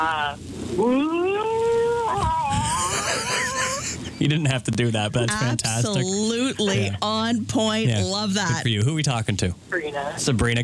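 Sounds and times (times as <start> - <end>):
speech: 0.0 - 1.3, 4.2 - 10.6
person imitating a whale call: 0.0 - 3.0
laughter: 2.0 - 4.6, 5.2 - 7.1.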